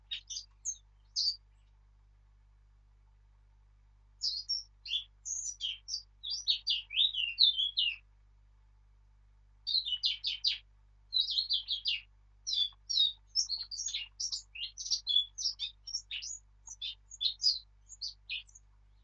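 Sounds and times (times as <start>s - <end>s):
Eurasian blackcap Sylvia atricapilla warbling song: 0.0s - 1.5s, 4.2s - 8.0s, 9.7s - 19.0s
faint low hum: 0.0s - 7.0s, 8.0s - 19.0s.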